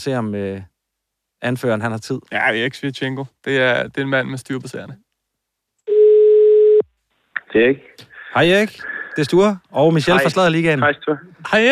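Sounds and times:
speech: 0.0s - 0.7s, 1.4s - 5.0s, 7.5s - 11.7s
ringback tone of an outgoing phone call: 5.9s - 6.8s.

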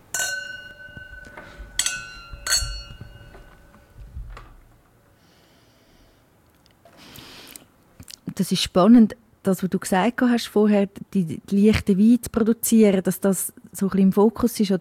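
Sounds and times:
wine glasses clinking in a toast during a wine tasting: 0.0s - 4.0s
handling noise: 0.0s - 5.0s
speech: 8.4s - 14.8s.

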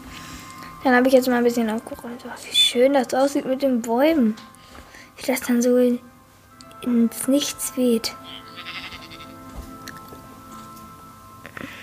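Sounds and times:
speech: 0.8s - 4.6s, 5.2s - 6.1s, 6.8s - 8.4s
sheep bleating: 8.2s - 9.4s.

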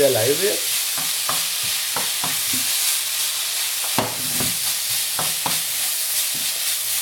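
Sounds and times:
rice frying in a pan with soy sauce: 0.0s - 7.0s.

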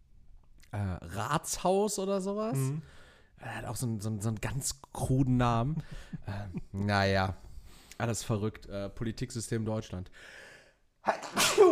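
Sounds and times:
speech: 0.7s - 7.4s, 8.0s - 10.4s, 11.0s - 11.7s
sneeze: 11.1s - 11.7s.

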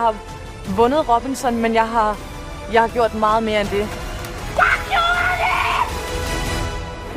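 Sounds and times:
speech: 0.0s - 4.0s
woman screaming in joyful victory: 4.6s - 6.0s.

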